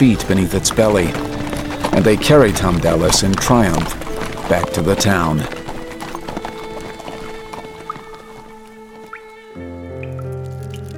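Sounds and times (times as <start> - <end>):
speech: 0.0 - 1.3, 1.9 - 5.6
water dripping in a stone dungeon: 10.0 - 10.9.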